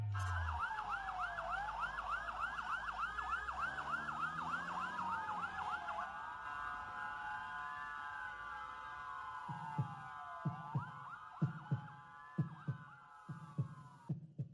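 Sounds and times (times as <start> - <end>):
siren wailing and sweeping up and down: 0.1 - 14.1
heartbeat effect with deep paired lub-dub thumps: 9.4 - 14.5.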